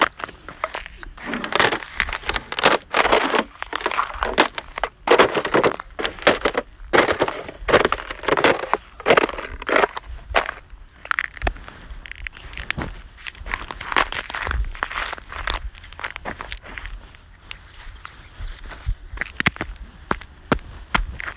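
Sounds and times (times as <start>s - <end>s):
footsteps of a person walking on brittle ice: 0.0s - 21.3s.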